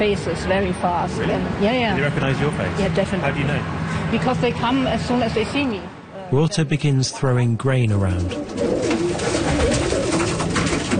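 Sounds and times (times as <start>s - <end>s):
speech: 0.0s - 9.0s
flock of pigeons wings fluttering, swooping down to be fed grain: 8.3s - 10.9s.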